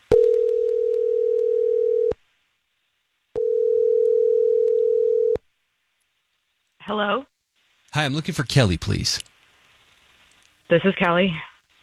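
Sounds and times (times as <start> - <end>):
ringback tones of an outgoing phone call: 0.1 - 2.2, 3.4 - 5.4
speech: 6.9 - 7.3, 8.0 - 9.3, 10.7 - 11.5.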